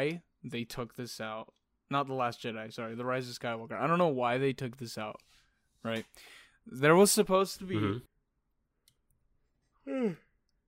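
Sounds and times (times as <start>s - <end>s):
speech: 0.0s - 8.1s, 9.8s - 10.2s
single short voiced yawn: 9.8s - 10.4s.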